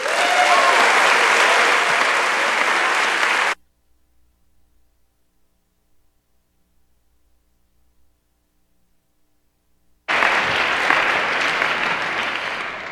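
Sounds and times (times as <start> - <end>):
sizable audience applause welcoming a guest speaker: 0.0 - 3.6, 10.1 - 12.9.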